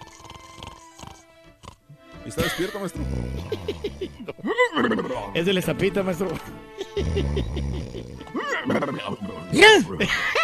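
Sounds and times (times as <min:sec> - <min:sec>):
voice imitating loud rough snoring of a sleeping man: 0:00.0 - 0:01.8, 0:02.9 - 0:05.3, 0:07.0 - 0:09.0
speech: 0:02.3 - 0:10.4
laughter: 0:02.4 - 0:05.2, 0:06.7 - 0:09.0, 0:09.9 - 0:10.4.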